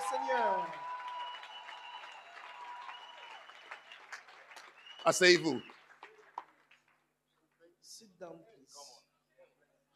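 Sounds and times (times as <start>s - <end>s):
audience applause: 0.0s - 7.0s
speech: 0.3s - 0.8s, 5.0s - 5.8s.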